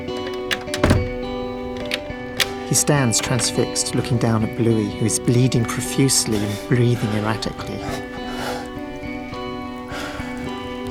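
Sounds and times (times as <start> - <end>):
door being shut and locked with a heavy thunk: 0.0 - 3.5
speech: 2.7 - 8.2.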